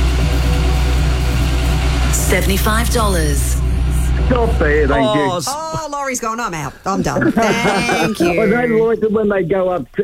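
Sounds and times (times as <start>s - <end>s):
fuel pump humming while filling a car: 0.0s - 6.0s
speech: 2.3s - 3.6s, 4.2s - 10.0s
laughter: 6.9s - 9.0s.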